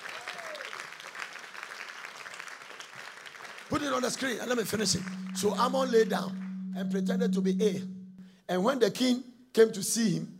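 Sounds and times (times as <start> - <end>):
crowd clapping in praise of the Lord: 0.0 - 5.0
speech: 3.7 - 10.3
faint whistle-like tone: 4.7 - 8.4.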